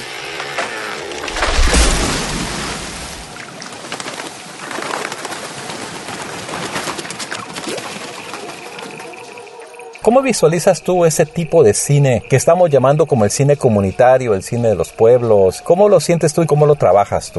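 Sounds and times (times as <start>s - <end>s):
heavy booming crash of a falling tree: 0.3s - 7.9s
birds taking off, wings fluttering and beating: 0.4s - 10.1s
speech: 10.1s - 17.3s.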